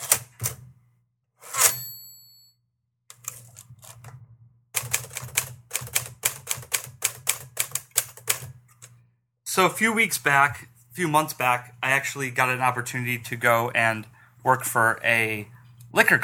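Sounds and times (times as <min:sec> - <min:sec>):
typewriter bell ring: 0:01.6 - 0:02.4
mechanical typewriter keys clacking: 0:03.1 - 0:04.1, 0:04.8 - 0:08.9
speech: 0:09.6 - 0:16.2.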